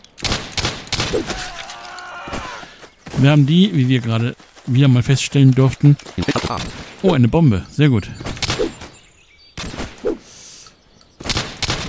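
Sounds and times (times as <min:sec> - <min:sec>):
pistol gunfire in a video game: 0:00.2 - 0:01.4, 0:11.2 - 0:11.8
speech: 0:03.2 - 0:08.3.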